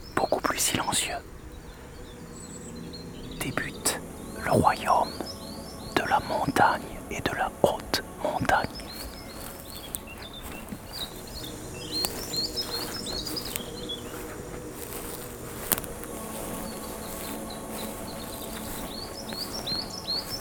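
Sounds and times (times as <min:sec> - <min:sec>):
birds chirping in mountain air: 0:00.0 - 0:20.3
soft insect-like hum: 0:00.0 - 0:20.3
speech: 0:00.6 - 0:01.4, 0:03.4 - 0:03.8, 0:04.5 - 0:05.4, 0:06.0 - 0:08.9.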